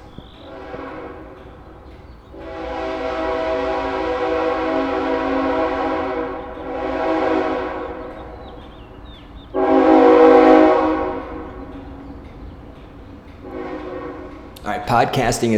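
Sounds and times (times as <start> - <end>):
long droning train horn blasts: 0.0 - 8.6, 9.5 - 12.0, 13.4 - 14.6
low rumble of the passing train: 0.0 - 15.5
speech: 14.9 - 15.5.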